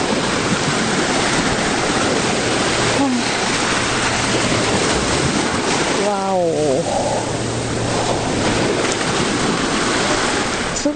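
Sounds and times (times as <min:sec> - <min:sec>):
ocean waves washing in: 0:00.0 - 0:10.9.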